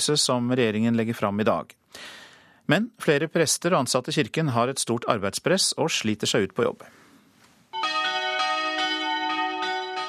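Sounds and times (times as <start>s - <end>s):
speech: 0.0s - 7.0s
church bells ringing: 7.8s - 10.0s.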